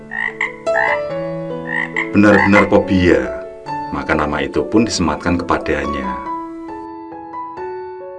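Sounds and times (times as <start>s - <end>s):
loud frog croaking: 0.0s - 4.3s
speech: 2.2s - 6.3s.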